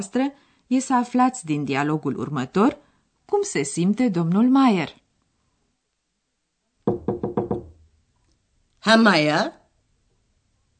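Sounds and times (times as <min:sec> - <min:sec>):
speech: 0:00.0 - 0:05.0, 0:08.8 - 0:09.6
knocking on a wooden door: 0:06.8 - 0:07.9.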